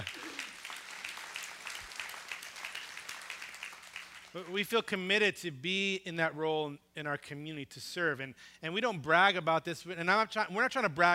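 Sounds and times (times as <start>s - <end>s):
audience clapping: 0.0s - 4.6s
speech: 4.4s - 11.1s.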